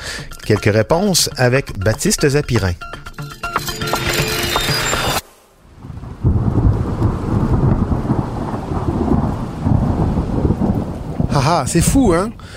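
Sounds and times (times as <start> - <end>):
speech: 0.5 - 3.0, 11.5 - 12.5
burst of bright busy sound: 3.7 - 5.4
steady rain: 5.2 - 12.5
deep rolling thunder: 5.7 - 12.2.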